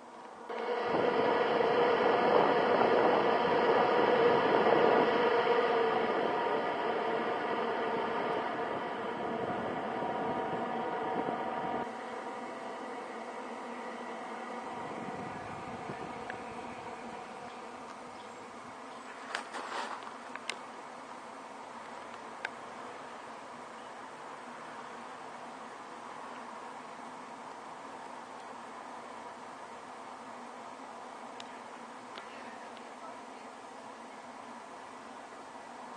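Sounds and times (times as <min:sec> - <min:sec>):
electric fan with three speeds running on low setting: 0:00.0 - 0:27.9
faint clicks: 0:31.4 - 0:32.9.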